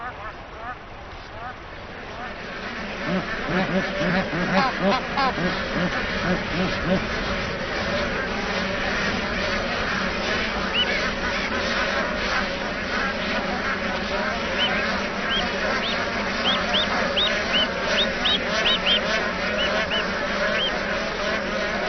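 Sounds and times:
flock of bar-headed geese honking: 0.0s - 21.8s
higher chirping notes: 14.5s - 20.7s.

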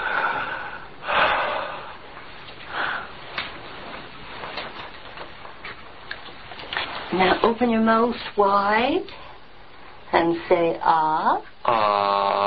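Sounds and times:
person breathing deeply in and out: 0.0s - 2.1s, 2.7s - 3.2s
speech: 7.1s - 9.2s, 10.1s - 12.4s.

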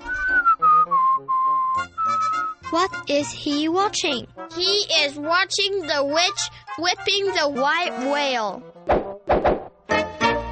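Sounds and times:
person whistling a tune in clear sustained high notes: 0.0s - 3.0s
speech: 2.7s - 9.0s.

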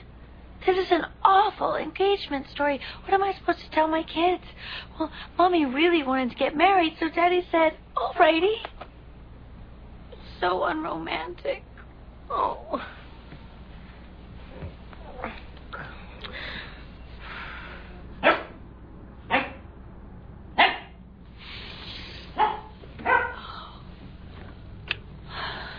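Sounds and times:
low steady hum: 0.0s - 25.7s
speech: 0.7s - 8.8s, 10.4s - 11.7s, 12.3s - 13.0s
dog barking: 18.2s - 18.6s, 19.3s - 19.6s, 20.6s - 21.0s, 22.4s - 23.4s.

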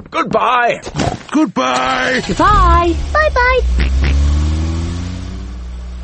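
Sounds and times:
speech: 0.1s - 4.1s
old family car engine revving: 1.8s - 6.0s.

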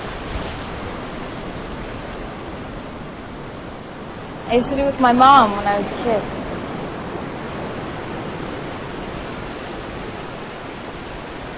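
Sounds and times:
waves washing out over beach sand on an island: 0.0s - 11.5s
speech: 4.5s - 6.4s.

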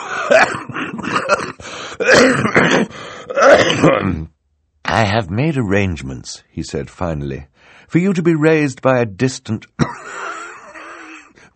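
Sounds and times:
person coughing: 0.0s - 4.3s, 9.8s - 11.4s
speech: 2.1s - 4.3s, 5.0s - 10.2s.

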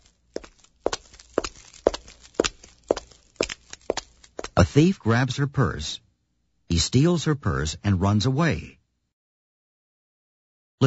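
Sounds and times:
footsteps of a woman walking at a steady pace: 0.0s - 4.8s
speech: 4.6s - 6.0s, 6.7s - 8.8s.

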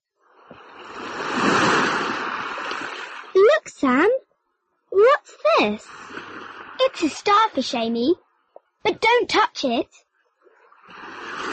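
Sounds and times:
sea waves washing in at the seaside: 0.2s - 3.8s, 5.7s - 7.3s, 10.7s - 11.5s
speech: 3.8s - 4.2s, 5.6s - 6.0s, 7.0s - 8.2s, 8.8s - 10.0s.

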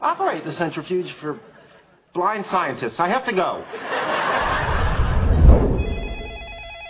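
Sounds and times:
speech: 0.0s - 4.4s
laughter: 3.6s - 5.2s
telephone ringing with electronic trill: 5.8s - 6.8s.

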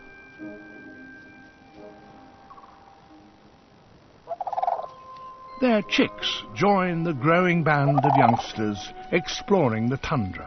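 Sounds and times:
sandhill cranes calling on Arctic tundra: 2.5s - 2.8s, 4.3s - 5.3s, 7.8s - 9.1s
speech: 5.6s - 10.4s.

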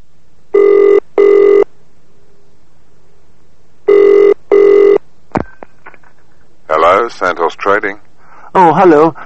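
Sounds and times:
telephone at a trading company ringing in double bursts: 0.6s - 1.6s, 3.9s - 5.0s
speech: 7.1s - 9.2s.

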